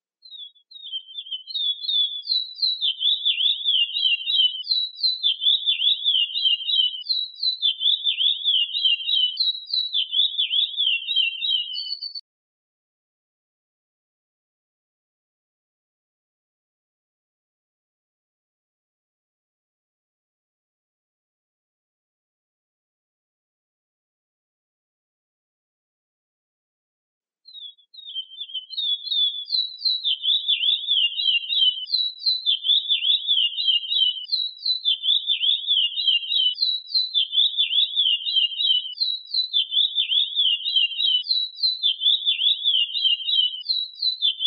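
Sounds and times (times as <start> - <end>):
curió bird singing: 0.2 - 12.2, 27.5 - 44.4.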